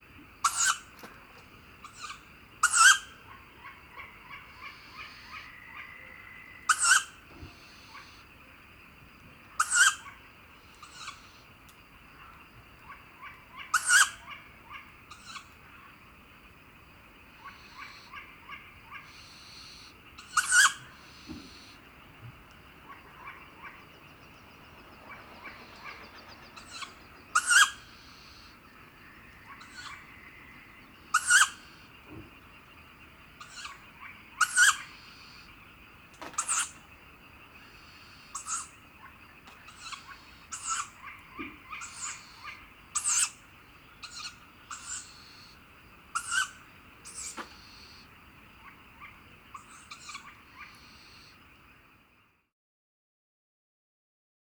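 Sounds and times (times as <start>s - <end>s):
tawny owl fledged brood begging calls: 0.4s - 1.0s, 1.8s - 8.2s, 9.5s - 11.5s, 12.2s - 15.8s, 17.3s - 51.4s.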